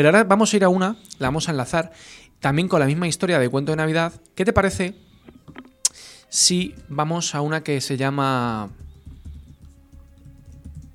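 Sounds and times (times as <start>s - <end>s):
speech: 0.0s - 8.8s
soft keyboard typing: 6.6s - 7.2s, 8.4s - 10.9s.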